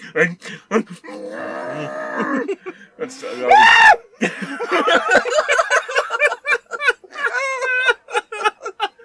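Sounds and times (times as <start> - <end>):
person screaming with a mouth full of food: 1.1 - 2.5, 3.3 - 4.0
laughter: 4.2 - 9.0.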